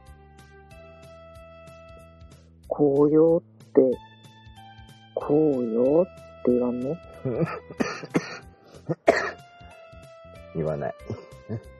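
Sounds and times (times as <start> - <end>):
speech: 2.7 - 4.1, 5.2 - 8.2, 10.6 - 11.7
person coughing: 7.3 - 9.4, 11.0 - 11.7.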